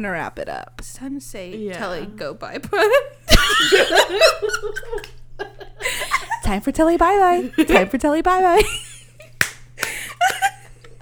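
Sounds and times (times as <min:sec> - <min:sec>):
speech: 0:00.0 - 0:05.5, 0:06.5 - 0:08.8
low steady hum: 0:00.0 - 0:10.9
laughter: 0:01.6 - 0:10.9
weak hand clap: 0:09.4 - 0:10.6.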